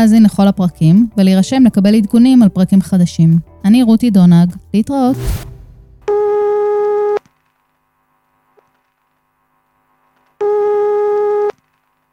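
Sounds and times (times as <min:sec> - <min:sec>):
speech: 0:00.0 - 0:05.5
buzzy electronic telephone call tones: 0:06.1 - 0:07.2, 0:10.4 - 0:11.6.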